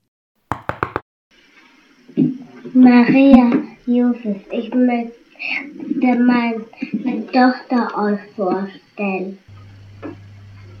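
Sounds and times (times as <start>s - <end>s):
knocking on a wooden stable door: 0.5s - 1.0s
speech: 2.2s - 9.4s.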